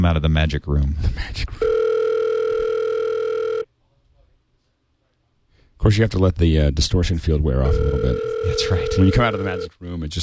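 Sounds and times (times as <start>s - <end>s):
speech: 0.0s - 1.7s, 5.8s - 10.2s
telephone dial tone while a call is being placed: 1.6s - 3.6s, 7.7s - 9.7s.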